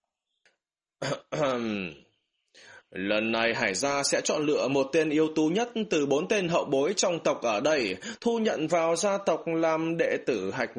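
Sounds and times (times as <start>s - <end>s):
person clearing throat: 1.0s - 1.9s
speech: 1.0s - 2.0s, 2.9s - 10.7s.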